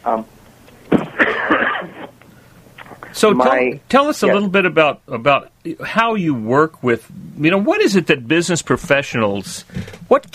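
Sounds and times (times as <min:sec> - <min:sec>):
speech: 0:00.0 - 0:00.3, 0:03.2 - 0:10.3
person coughing: 0:00.9 - 0:02.1
harsh rasping throat-clearing: 0:00.9 - 0:02.2.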